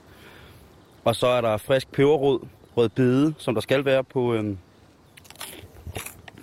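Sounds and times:
speech: 0:01.0 - 0:04.7
crackling crunches of chewing bread: 0:05.1 - 0:06.4
biting into crunchy bread with salmon: 0:05.2 - 0:06.4.

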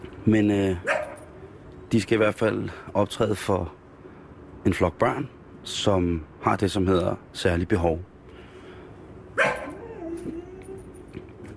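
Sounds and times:
speech: 0:00.2 - 0:01.0, 0:01.9 - 0:03.8, 0:04.6 - 0:08.1
small dog yipping: 0:09.4 - 0:11.1.

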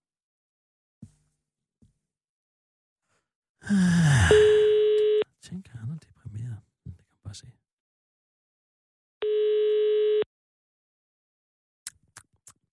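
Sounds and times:
speech: 0:03.6 - 0:04.5, 0:07.3 - 0:07.6
buzzy telephone busy tone: 0:04.3 - 0:05.2, 0:09.2 - 0:10.3.

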